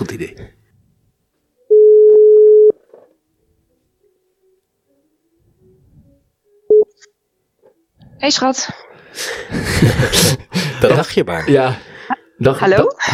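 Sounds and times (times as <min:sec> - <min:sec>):
speech: 0:00.0 - 0:00.6, 0:08.2 - 0:13.1
telephone ringback tone while placing a call: 0:01.7 - 0:02.8
laughter: 0:09.4 - 0:11.4.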